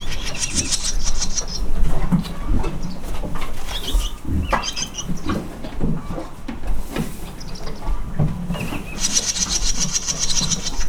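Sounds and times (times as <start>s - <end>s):
pigs eating in a pigsty in a farmyard: 0.0s - 10.8s.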